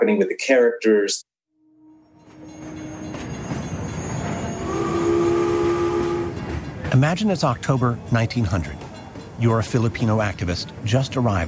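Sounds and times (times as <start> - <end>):
speech: 0.1 - 1.3, 6.9 - 8.8, 9.4 - 11.4
train rumbling into a station platform: 1.9 - 11.4
sustained horn-like tone of arriving train: 2.5 - 6.6.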